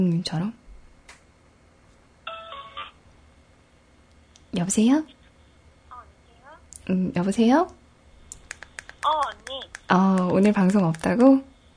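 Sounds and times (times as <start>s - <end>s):
speech: 0.0s - 0.6s, 4.5s - 5.2s, 6.9s - 7.8s, 9.0s - 11.5s
electronic phone ringback tone: 2.3s - 3.0s.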